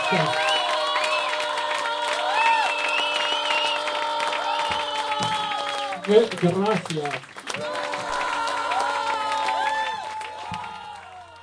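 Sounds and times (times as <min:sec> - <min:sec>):
whoops and high yells from concert crowd: 0:00.0 - 0:06.0, 0:07.6 - 0:11.4
large concert crowd cheering and shouting: 0:00.0 - 0:06.7, 0:07.5 - 0:11.4
speech: 0:00.1 - 0:00.4, 0:06.1 - 0:07.7.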